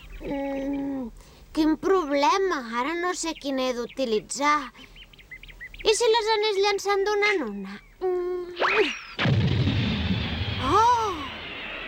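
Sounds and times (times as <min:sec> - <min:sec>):
speech: 0:01.6 - 0:04.9, 0:05.8 - 0:09.0
thrown colored capsule exploding into a cloud of dust: 0:09.2 - 0:11.8
rising whistle of a thrown capsule: 0:10.5 - 0:11.8.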